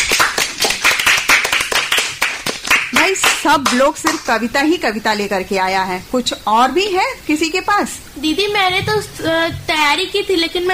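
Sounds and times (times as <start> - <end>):
audience applauding at a children's event: 0.0 - 4.2
speech: 3.1 - 10.7.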